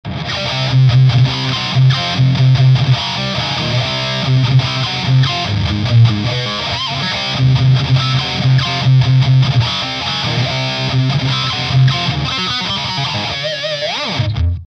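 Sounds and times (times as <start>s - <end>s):
guitar through Ibanez SM7 Void Smooth effects pedal: 0.0s - 14.6s.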